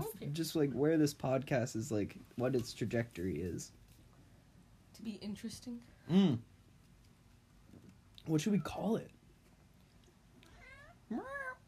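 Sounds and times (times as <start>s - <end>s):
low hum: 0.0s - 11.6s
speech: 0.4s - 3.8s, 5.0s - 6.5s, 8.2s - 9.2s, 11.1s - 11.4s
cat meowing: 10.5s - 11.6s.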